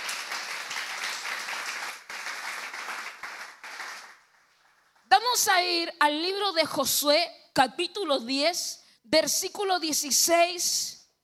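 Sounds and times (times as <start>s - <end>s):
audience applause: 0.0s - 4.5s
speech: 5.4s - 11.0s.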